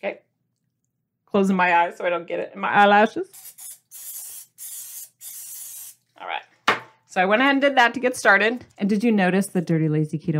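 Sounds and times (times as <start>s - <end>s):
speech: 0.0s - 0.2s, 1.3s - 3.7s, 7.1s - 10.3s
nonstick cooking spray sprayed into mug: 3.3s - 6.0s.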